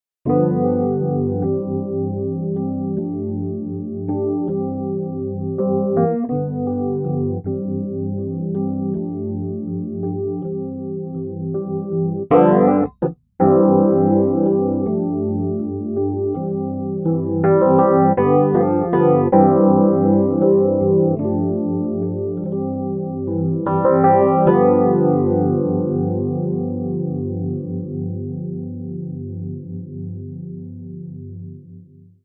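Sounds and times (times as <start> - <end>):
subtle Rhodes electric piano: 0.3 - 32.2.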